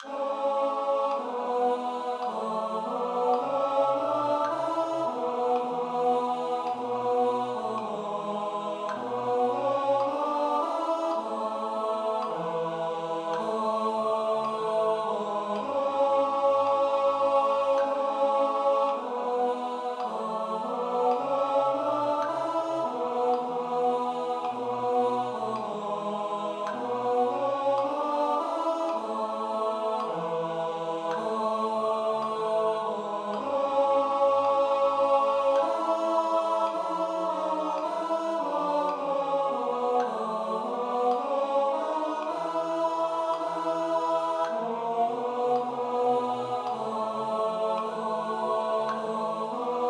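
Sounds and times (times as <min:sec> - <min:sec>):
tenor singing: 0:00.0 - 0:49.8.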